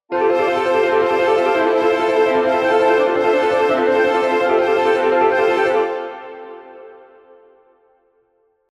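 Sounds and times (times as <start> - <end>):
musical accompaniment: 0.1 - 7.6.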